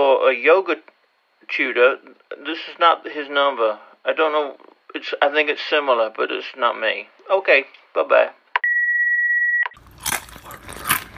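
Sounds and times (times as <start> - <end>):
speech: 0.0 - 8.4
long steady electronic beep: 8.6 - 9.8
potato chip crunched by bites: 9.8 - 11.1.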